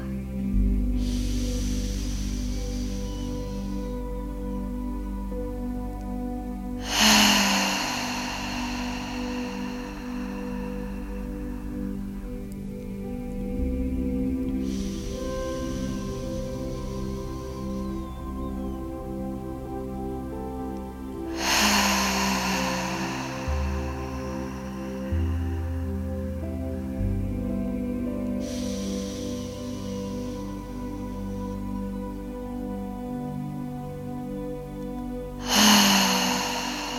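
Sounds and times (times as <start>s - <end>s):
deep breaths with open-mouth exhales: 0.0s - 5.4s, 6.7s - 33.2s, 35.2s - 36.9s
low sustained musical drone: 0.0s - 36.9s.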